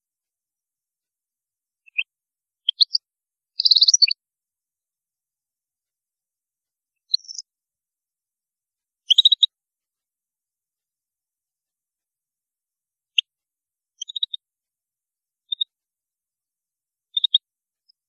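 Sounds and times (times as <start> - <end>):
European goldfinch song: 1.8 - 4.2, 6.9 - 7.5, 9.0 - 9.6, 13.0 - 14.5, 15.4 - 15.8, 17.0 - 18.0.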